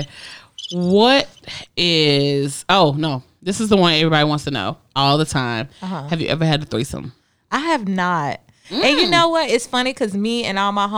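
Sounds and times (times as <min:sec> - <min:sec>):
cricket chirping soundboard effect: 0:00.0 - 0:01.4
speech: 0:00.0 - 0:10.9.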